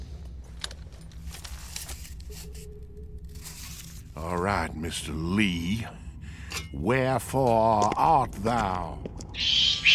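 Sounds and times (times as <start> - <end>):
speech: 4.2 - 6.0, 6.7 - 9.6
rats squeaking in old catacombs: 9.4 - 9.9.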